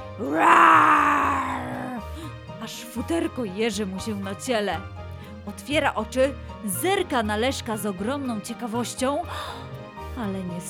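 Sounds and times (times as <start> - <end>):
speech: 0.2 - 0.6, 2.7 - 10.6
person mimicking an animal roar: 0.2 - 2.0.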